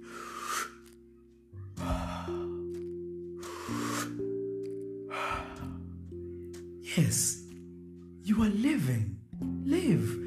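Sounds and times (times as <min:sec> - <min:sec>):
slow deep breaths in and out: 0:00.0 - 0:01.0, 0:01.8 - 0:02.8, 0:03.4 - 0:04.3, 0:05.1 - 0:06.0
steady low musical drone: 0:00.0 - 0:10.2
speech: 0:07.0 - 0:07.4, 0:08.3 - 0:09.2.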